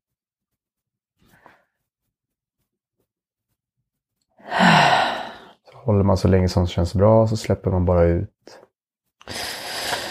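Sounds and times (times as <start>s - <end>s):
deep breath during breathing exercise: 4.4s - 5.6s, 9.2s - 10.0s
speech: 5.9s - 8.6s.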